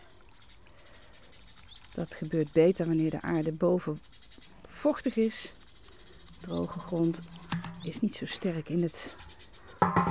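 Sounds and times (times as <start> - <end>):
water pouring into a shallow plant pot saucer: 0.0 - 2.1, 5.6 - 8.4
speech: 2.0 - 4.2, 4.8 - 5.6, 6.4 - 9.2.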